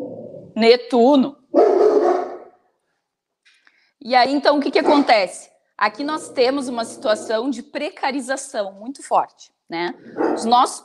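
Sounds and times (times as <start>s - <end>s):
speech: 0.6s - 1.4s, 4.0s - 10.8s
dog barking: 1.5s - 2.6s, 4.8s - 5.2s, 10.1s - 10.6s.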